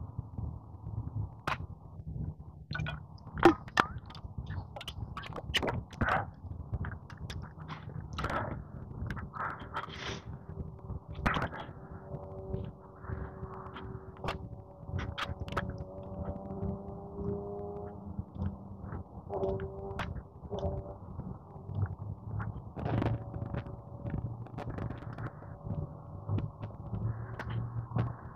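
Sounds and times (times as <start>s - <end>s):
steady outdoor rumble: 0.0s - 28.3s
motorcycle engine droning on a highway: 7.5s - 28.3s.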